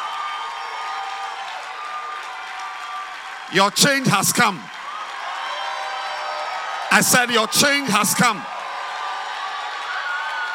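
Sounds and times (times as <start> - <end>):
large audience clapping: 0.0 - 10.5
speech: 3.5 - 4.8, 6.9 - 8.5.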